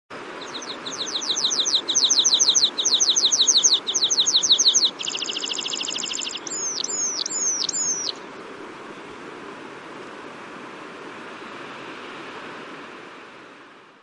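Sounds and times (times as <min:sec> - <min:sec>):
red-throated pipit singing: 0:00.2 - 0:08.2.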